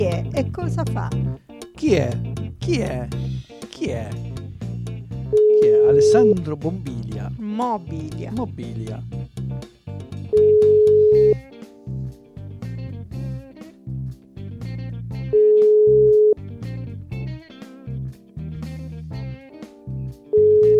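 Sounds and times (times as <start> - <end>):
speech: 0.0 - 4.3, 5.3 - 9.2
rhythmic music with a bouncy beat: 0.0 - 20.7
phone call ringing tone beeps: 5.3 - 6.1, 10.3 - 11.4, 15.3 - 16.4, 20.3 - 20.7.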